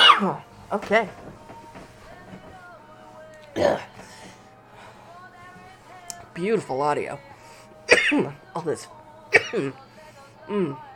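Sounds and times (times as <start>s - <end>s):
person coughing: 0.0s - 0.4s, 3.6s - 3.9s, 7.9s - 8.3s, 9.3s - 9.7s
speech: 0.2s - 1.4s, 3.6s - 4.1s, 6.4s - 7.3s, 8.1s - 9.8s, 10.5s - 10.9s
throaty vocal grunt: 3.6s - 4.0s.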